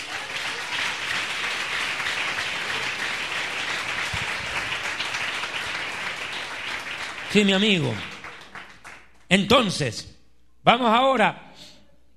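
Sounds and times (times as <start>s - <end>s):
crowd applauding: 0.0s - 9.3s
speech: 7.3s - 8.1s, 9.3s - 11.4s.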